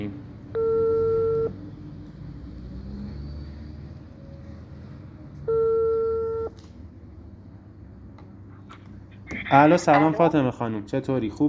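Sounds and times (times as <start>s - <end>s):
telephone ringback tone while placing a call: 0.6s - 1.5s, 5.5s - 6.5s
speech: 9.5s - 11.4s.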